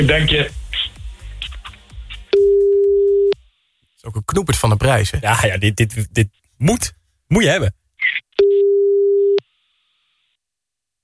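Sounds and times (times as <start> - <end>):
speech: 0.0 - 0.6, 4.0 - 7.8
telephone ringing tone while placing a call: 2.4 - 3.4, 8.4 - 9.4.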